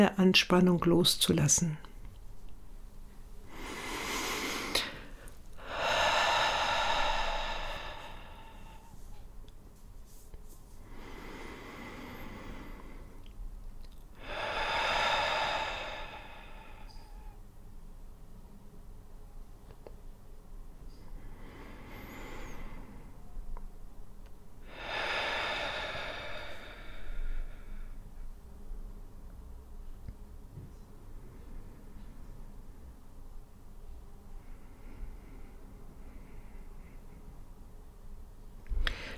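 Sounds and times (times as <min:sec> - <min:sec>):
speech: 0:00.0 - 0:01.9
deep slow breathing in and out: 0:03.4 - 0:09.3, 0:10.8 - 0:13.4, 0:14.0 - 0:17.4, 0:20.9 - 0:23.5, 0:24.6 - 0:28.4, 0:34.3 - 0:37.5, 0:38.8 - 0:39.1.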